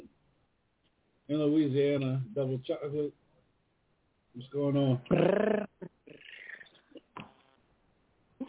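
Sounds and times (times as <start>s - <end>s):
speech: 1.3s - 3.2s, 4.3s - 5.7s
person making a throaty purring sound over a phone-like line: 5.1s - 7.5s.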